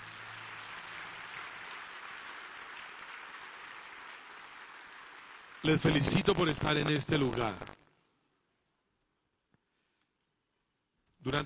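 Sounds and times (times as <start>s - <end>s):
crowd applauding: 0.0s - 7.5s
speech: 5.6s - 7.8s.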